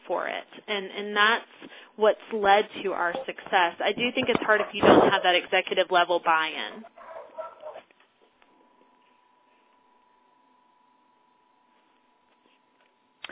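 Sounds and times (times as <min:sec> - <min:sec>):
faint steady hum: 0:00.0 - 0:13.2
speech: 0:00.1 - 0:07.0
dog yelping: 0:06.7 - 0:07.9
dog barking: 0:06.8 - 0:07.8.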